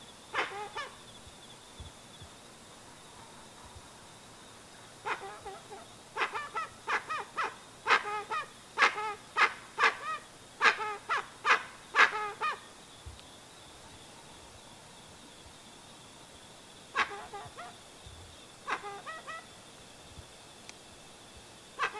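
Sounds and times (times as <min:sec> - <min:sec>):
insect whine: 0:00.0 - 0:21.9
dusky-legged guan giving honking calls: 0:00.3 - 0:01.0, 0:05.0 - 0:12.7, 0:16.9 - 0:17.8, 0:18.6 - 0:19.5, 0:21.8 - 0:21.9.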